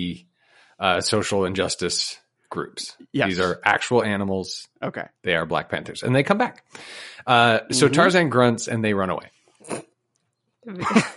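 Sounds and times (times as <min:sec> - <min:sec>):
speech: 0:00.0 - 0:09.8, 0:10.6 - 0:11.1
person imitating a menacing animal growl: 0:07.6 - 0:08.1.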